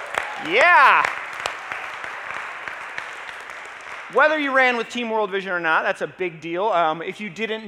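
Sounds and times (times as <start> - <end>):
audience clapping: 0.0 - 5.6
speech: 0.4 - 1.2, 4.1 - 7.6.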